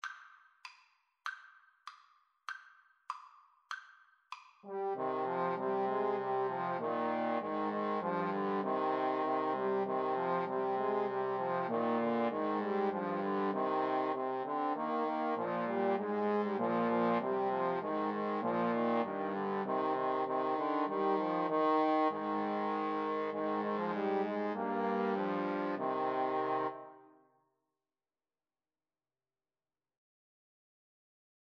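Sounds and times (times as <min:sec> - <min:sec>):
trombone trio playing a carol: 0:04.7 - 0:26.9.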